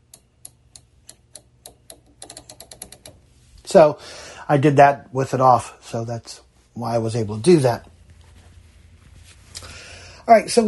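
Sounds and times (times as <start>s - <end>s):
washing machine dial knob clicking as it is turned: 0.0s - 3.2s
speech: 3.7s - 7.9s, 10.3s - 10.6s.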